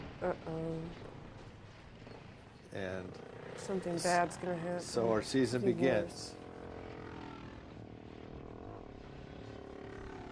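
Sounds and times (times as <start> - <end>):
speech: 0.2 - 1.1, 2.7 - 6.4
small moped engine droning: 2.8 - 10.2.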